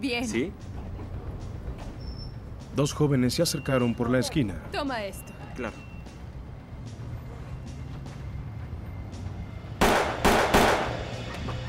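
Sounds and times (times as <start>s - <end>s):
speech: 0.0s - 0.7s, 2.8s - 5.9s
sharp gunshots with tail: 9.8s - 11.0s.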